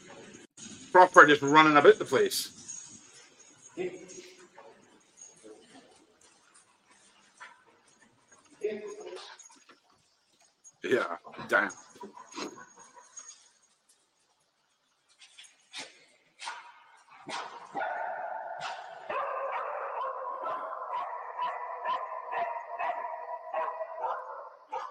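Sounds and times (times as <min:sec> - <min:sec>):
speech: 0:01.0 - 0:02.6, 0:03.8 - 0:04.2, 0:10.9 - 0:11.8
dog barking in a played video: 0:15.8 - 0:24.8.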